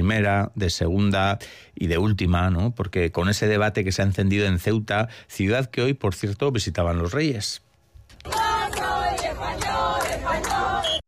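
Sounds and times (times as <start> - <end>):
speech: 0.1 - 8.4
applause and cheering: 8.2 - 11.0
large crowd chanting a slogan in unison: 8.2 - 11.0.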